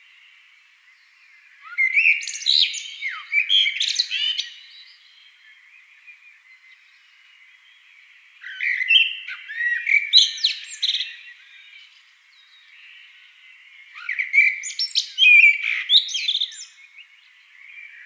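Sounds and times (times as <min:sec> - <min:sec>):
Eurasian blackbird singing mellow warble and squeaky twitters: 0:00.1 - 0:18.0.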